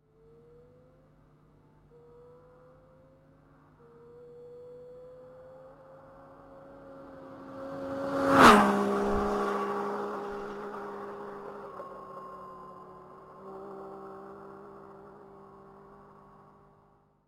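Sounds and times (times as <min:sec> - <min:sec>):
Triumph Daytona motorcycle engine: 0:05.4 - 0:17.1.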